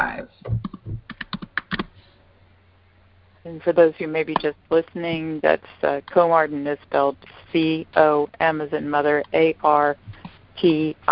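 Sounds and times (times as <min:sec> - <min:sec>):
keystrokes on a computer keyboard typing a phone number: 0:00.5 - 0:01.9
speech: 0:03.5 - 0:11.0.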